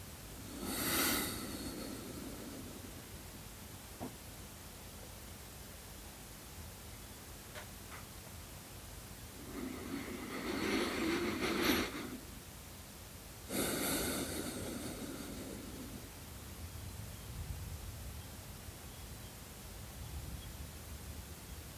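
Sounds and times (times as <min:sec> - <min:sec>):
low steady hiss: 0:00.0 - 0:21.7
deep breaths taken during a breathing exercise: 0:00.4 - 0:03.3, 0:09.4 - 0:12.3, 0:13.5 - 0:16.3.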